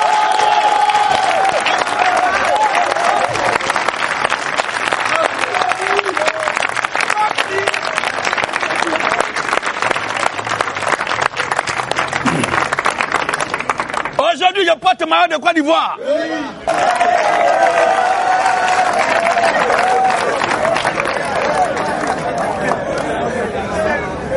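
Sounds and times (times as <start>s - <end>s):
crowd clapping and cheering in acclamation at a church gathering: 0.0s - 14.8s, 16.6s - 23.7s
speech: 15.1s - 17.0s.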